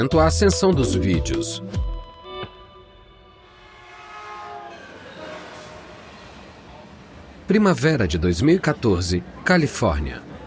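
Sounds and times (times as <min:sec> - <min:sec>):
speech: 0:00.0 - 0:01.9, 0:07.5 - 0:10.4
passenger train rolling along the rails: 0:03.5 - 0:09.5.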